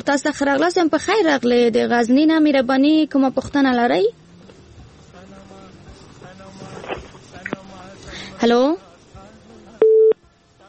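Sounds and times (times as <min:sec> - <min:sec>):
speech: 0:00.0 - 0:04.2, 0:08.4 - 0:08.9
telephone busy signal after a call is cut off: 0:09.8 - 0:10.2.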